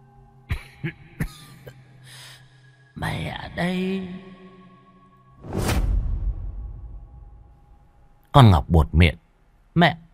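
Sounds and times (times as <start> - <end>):
person coughing dryly: 0.5 - 1.8
speech: 0.8 - 1.4, 3.0 - 4.3, 8.4 - 9.2, 9.8 - 10.0.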